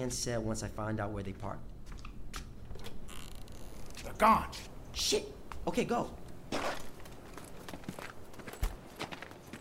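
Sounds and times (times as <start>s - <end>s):
speech: 0.0s - 1.7s, 4.1s - 6.7s
footsteps: 1.8s - 3.1s, 6.3s - 9.5s.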